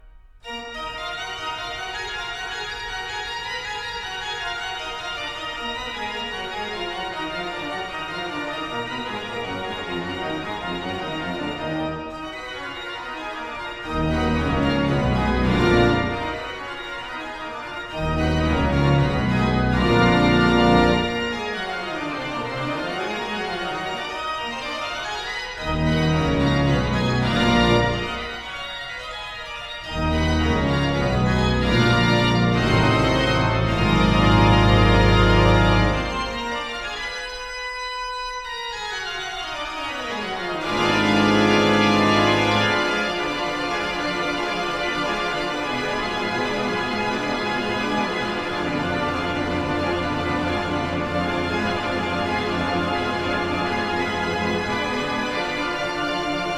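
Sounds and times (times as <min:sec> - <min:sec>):
organ: 0:00.0 - 0:56.5.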